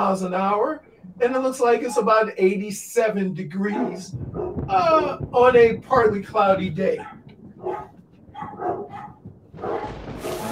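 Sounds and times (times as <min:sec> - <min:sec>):
speech: 0:00.0 - 0:07.1
dogs barking at a passing car: 0:03.7 - 0:04.7, 0:07.0 - 0:10.5.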